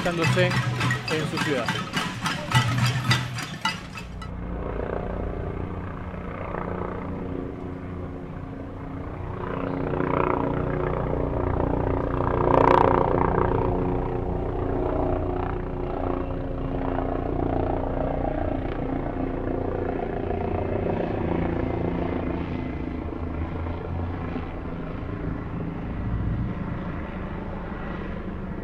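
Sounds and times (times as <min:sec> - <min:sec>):
speech: 0:00.0 - 0:01.8
city noise: 0:00.0 - 0:09.4
helicopter rotor and engine droning overhead over a city: 0:00.0 - 0:28.6.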